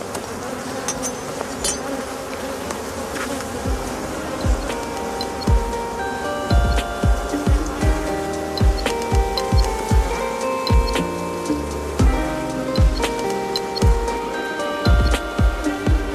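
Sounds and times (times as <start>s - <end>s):
honeybees buzzing around a beehive: 0.0s - 16.1s
individual honeybees whining past: 0.0s - 16.1s
soft low thumps: 3.6s - 11.2s, 11.8s - 13.2s, 13.8s - 14.2s, 14.9s - 16.1s.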